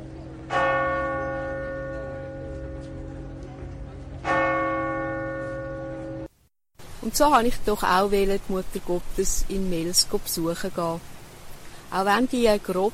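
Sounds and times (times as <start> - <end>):
deep church bell strikes in Lourdes: 0.4 - 3.2, 4.2 - 6.3
speech: 7.0 - 11.1, 11.9 - 12.9.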